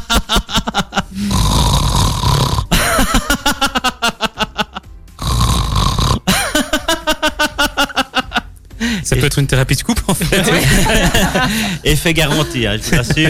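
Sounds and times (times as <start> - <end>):
person laughing in a sleep laughter exercise: 0.0 - 1.4, 2.7 - 4.9, 6.2 - 8.5, 10.2 - 13.2
person imitating loud rasping snores: 1.0 - 2.9, 5.2 - 6.3
speech: 9.1 - 13.2.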